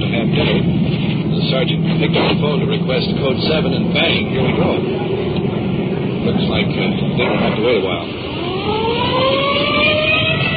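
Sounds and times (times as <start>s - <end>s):
police car engine rumble: 0.0s - 10.5s
speech: 1.5s - 5.3s, 6.2s - 8.4s
police car siren wailing on an emergency run: 7.2s - 10.5s.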